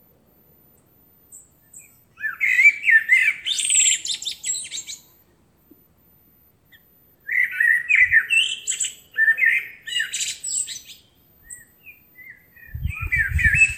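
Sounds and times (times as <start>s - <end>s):
Eurasian blackbird singing fluty warbles: 1.3s - 5.2s, 6.7s - 13.7s.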